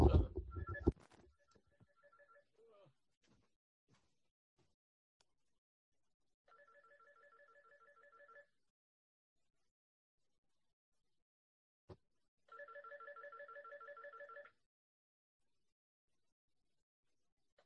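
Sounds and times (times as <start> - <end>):
phone ringing with electronic two-tone trill: 0.0 - 1.0, 1.8 - 2.4, 6.5 - 8.5, 12.5 - 14.6.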